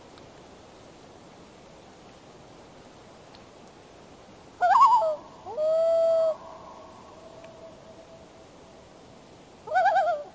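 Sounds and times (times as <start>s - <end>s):
loon calling: 4.6s - 8.1s, 9.7s - 10.3s.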